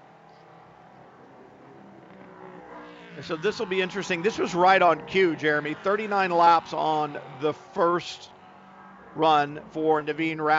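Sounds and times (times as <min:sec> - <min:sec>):
race car engine droning across the line on the track: 0:00.0 - 0:10.5
speech: 0:03.2 - 0:08.4, 0:09.2 - 0:10.5.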